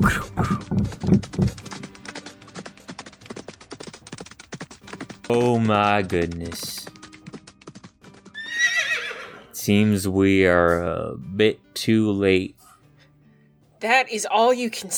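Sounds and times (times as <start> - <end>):
person exclaiming: 0.0 - 0.8
speech: 0.0 - 1.2, 5.3 - 6.8, 9.6 - 12.6, 13.8 - 14.9
horse hooves clip-clopping: 0.0 - 9.4
horse whinnying: 8.4 - 9.6.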